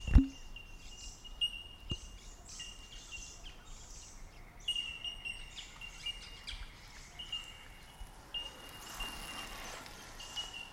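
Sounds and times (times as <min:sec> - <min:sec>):
many bell miners giving bell-like tinking calls along a track: 0:00.3 - 0:03.4, 0:04.6 - 0:10.7
soft rushing noise: 0:07.2 - 0:10.7.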